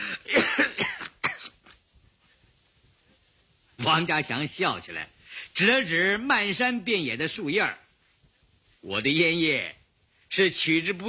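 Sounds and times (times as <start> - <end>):
person coughing violently after smoking: 0.0 - 1.6
speech: 3.9 - 7.8, 8.8 - 11.0.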